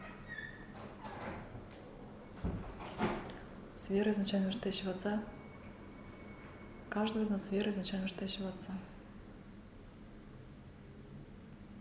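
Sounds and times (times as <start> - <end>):
sliding door squeaking: 0.0 - 1.5
speech: 3.9 - 5.4, 7.0 - 9.0.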